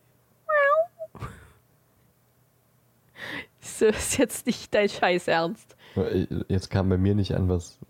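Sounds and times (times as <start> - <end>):
voice imitating a quiet cat meow under a basement staircase: 0.5 - 1.2
speech: 3.8 - 7.8.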